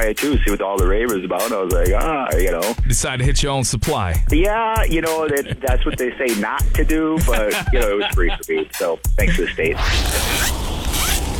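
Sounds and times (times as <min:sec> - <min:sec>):
speech: 0:00.1 - 0:10.6
laughter: 0:04.9 - 0:10.5
zipper on a child's new winter coat being zipped up: 0:09.7 - 0:11.3.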